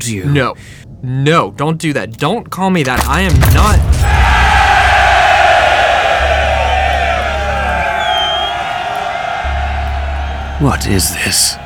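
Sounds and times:
speech: 0.0 - 4.3, 10.6 - 11.6
large crowd cheering: 3.6 - 11.6.

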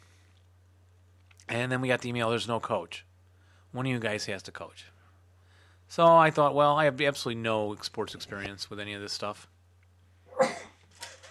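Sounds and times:
low steady hum: 0.0 - 11.2
speech: 1.5 - 3.1, 3.7 - 5.0, 5.9 - 9.5
loud sneeze: 10.3 - 10.8.

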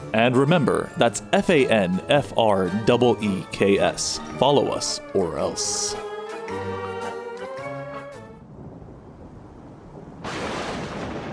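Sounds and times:
speech: 0.1 - 6.8
thunder sound effect with rolling low rumble: 8.4 - 11.3.

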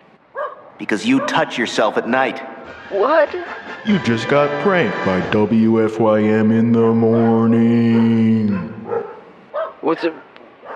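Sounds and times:
dog barking: 0.4 - 1.7, 7.0 - 10.7
speech: 0.8 - 8.7, 9.8 - 10.2.

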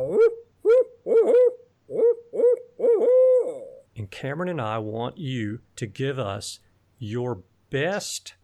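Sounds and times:
person imitating owl hoots recorded on a cell phone: 0.0 - 3.9
speech: 4.1 - 8.4.

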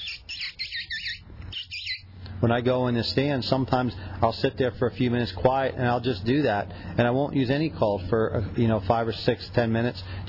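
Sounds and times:
mouth kissing squeaks used as a predator call: 0.0 - 2.0
speech: 2.4 - 10.2.

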